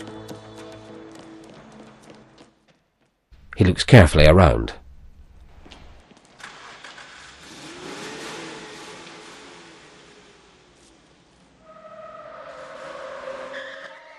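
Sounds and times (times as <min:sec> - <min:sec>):
speech: 0:03.6 - 0:04.8
pickup truck engine roaring: 0:05.3 - 0:14.1
pickup truck tires screeching around a corner: 0:05.6 - 0:14.1.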